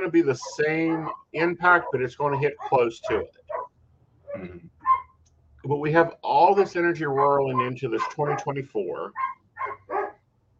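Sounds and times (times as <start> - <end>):
speech: 0.0 - 3.4, 4.4 - 4.7, 5.6 - 9.4
dog barking: 0.3 - 3.7, 4.8 - 5.2, 7.1 - 10.2.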